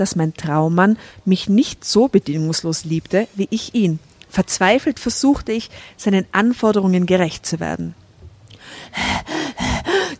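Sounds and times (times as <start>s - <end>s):
speech: 0.0s - 8.0s, 8.7s - 9.4s
heavy rapid panting and gasping for air: 8.6s - 10.1s.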